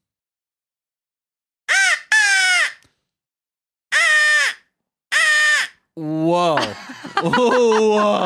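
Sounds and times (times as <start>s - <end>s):
raspy crow caws blown on a crow whistle: 1.7s - 2.8s, 3.9s - 5.8s
speech: 6.0s - 8.2s
laughter: 6.4s - 8.2s.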